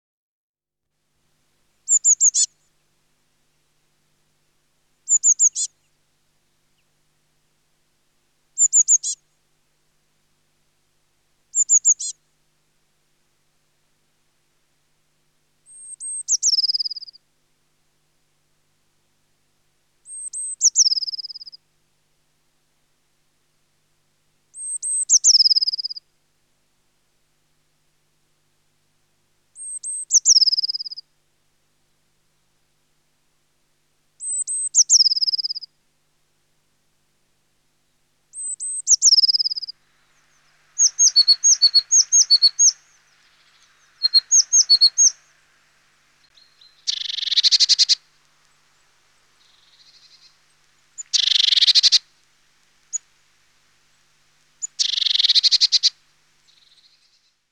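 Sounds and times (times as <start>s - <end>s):
blue tit: 1.9s - 2.5s, 5.1s - 5.8s, 8.6s - 9.2s, 11.5s - 12.2s, 15.7s - 17.2s, 20.1s - 21.6s, 24.6s - 26.0s, 29.6s - 31.0s, 34.2s - 35.7s, 38.4s - 45.4s, 46.2s - 52.0s, 54.6s - 55.9s.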